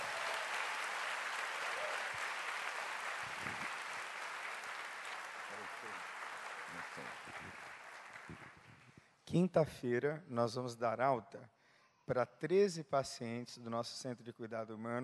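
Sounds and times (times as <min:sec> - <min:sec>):
large audience applauding loudly: 0:00.0 - 0:09.0
speech: 0:06.7 - 0:08.4, 0:09.3 - 0:15.0.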